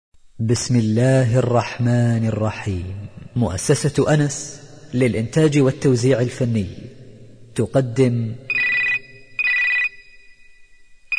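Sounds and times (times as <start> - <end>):
speech: 0.4 - 6.9, 7.6 - 8.6
telephone ringing with electronic rings: 8.5 - 10.5.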